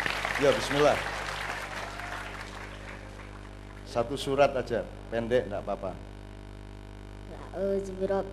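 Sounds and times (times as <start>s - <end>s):
crowd clapping: 0.0s - 4.0s
low electrical hum: 0.0s - 8.3s
speech: 0.4s - 1.2s, 3.9s - 6.1s, 7.6s - 8.3s.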